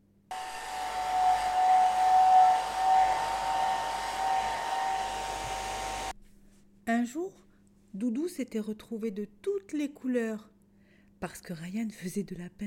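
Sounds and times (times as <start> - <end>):
hair dryer drying a wet toy: 0.3 - 6.1
speech: 7.0 - 10.5, 11.2 - 12.6.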